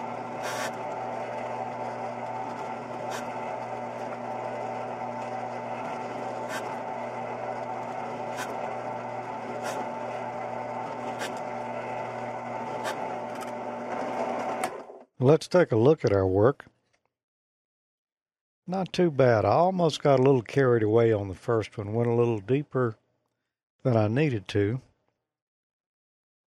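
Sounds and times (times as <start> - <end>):
spot weld cutter drill motor whirring: 0.0 - 15.0
spot weld cutter scraping into a circuit board: 0.3 - 0.9, 2.2 - 4.3, 5.8 - 7.0, 7.6 - 10.2, 10.8 - 11.6, 12.6 - 13.6
speech: 15.2 - 16.8, 18.7 - 23.0, 23.8 - 24.9.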